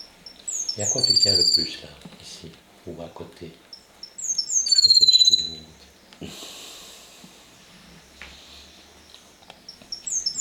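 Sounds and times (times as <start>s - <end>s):
small pet bird chirping with bright high calls: 0.0s - 1.8s, 3.6s - 6.1s, 9.0s - 10.4s
speech: 0.8s - 3.7s.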